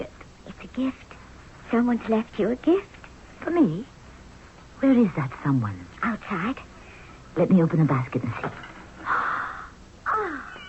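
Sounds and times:
speech: 0:00.8 - 0:01.1, 0:01.7 - 0:03.9, 0:04.8 - 0:06.7, 0:07.4 - 0:08.7
kitten meowing: 0:10.2 - 0:10.6.

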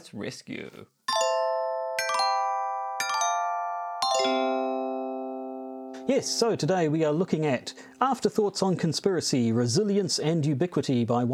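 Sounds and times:
speech: 0:00.1 - 0:01.0, 0:04.2 - 0:05.0, 0:06.1 - 0:11.3
four-note bell-like chime: 0:01.1 - 0:08.3.

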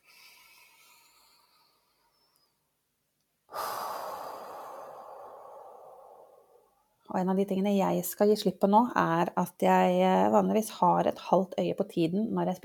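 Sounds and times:
deep breath in and out close to the microphone: 0:00.0 - 0:02.4, 0:03.5 - 0:06.8
speech: 0:07.1 - 0:12.6.

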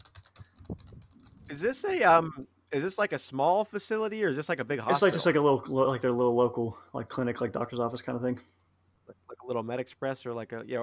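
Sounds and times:
man typing on a computer keyboard at a clinic reception desk: 0:00.0 - 0:01.6
speech: 0:01.5 - 0:08.6, 0:09.5 - 0:10.8.

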